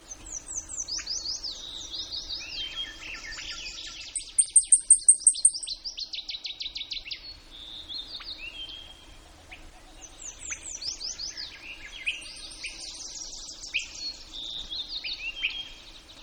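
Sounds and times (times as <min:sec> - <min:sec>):
Blackpoll warbler song in Denali, Alaska, USA: 0:00.0 - 0:16.2.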